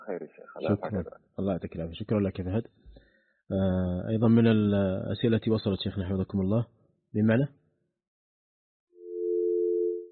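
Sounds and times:
speech: 0.1 - 2.8, 3.5 - 7.6
dial tone after a phone call disconnects: 9.0 - 10.1.

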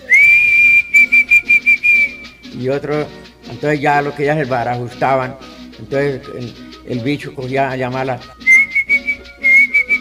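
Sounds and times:
person whistling to call partridges: 0.0 - 2.6, 8.2 - 9.9
speech: 2.6 - 8.4.

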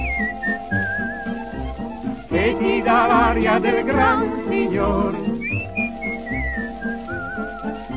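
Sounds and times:
person whistling a 1941 Italian waltz melody: 0.0 - 7.9
steady instrumental backing with a lilting pulse: 0.0 - 7.9
speech: 2.3 - 5.4.

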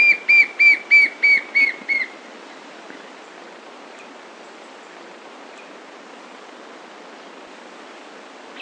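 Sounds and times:
White-shouldered fire-eye Pyriglena leucoptera calling with clear whistled notes: 0.0 - 2.1.

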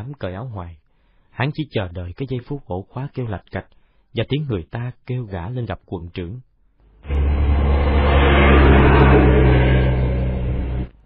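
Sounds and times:
speech: 0.0 - 0.8, 1.4 - 6.5
truck engine rumbling as the truck drives into a yard: 7.1 - 10.9.

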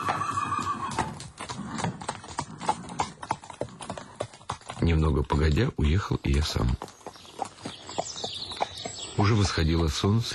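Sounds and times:
horse whinnying: 0.0 - 4.2
horses pulling a tarantass carriage, hooves clip-clopping: 0.0 - 10.3
speech: 4.8 - 7.0, 9.2 - 10.3.

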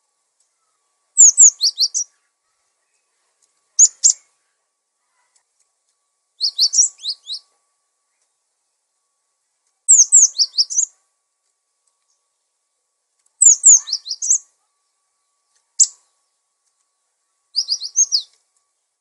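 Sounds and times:
bird song in high twittering phrases of rapid slurred notes: 0.4 - 3.2, 3.8 - 4.5, 6.4 - 8.5, 9.9 - 11.0, 13.4 - 18.9.

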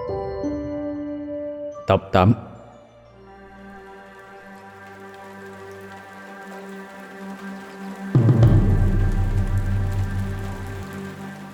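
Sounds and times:
speech: 1.9 - 2.5
light rain pattering: 3.4 - 11.5
low hum: 8.2 - 11.5.

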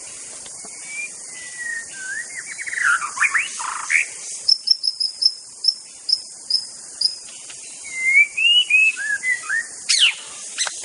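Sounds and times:
steady high insect drone in forest: 0.0 - 10.8
white-rumped shama singing in forest: 0.7 - 5.0, 7.8 - 10.2.

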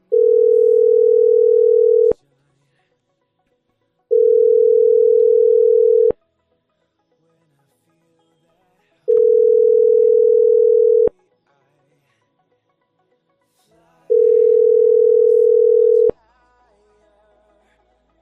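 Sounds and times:
telephone ringback tone after dialing a number: 0.0 - 2.2, 4.1 - 6.2, 9.1 - 11.1, 14.1 - 16.2.

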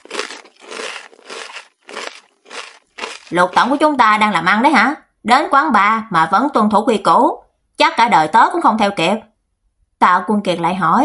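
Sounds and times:
crunchy chewing of coconut: 0.0 - 4.0
speech: 3.3 - 9.3, 10.0 - 11.0.

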